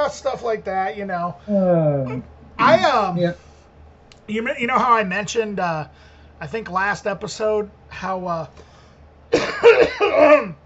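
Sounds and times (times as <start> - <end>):
speech: 0.1 - 3.5, 4.3 - 8.7, 9.3 - 10.6
person coughing: 9.4 - 10.6.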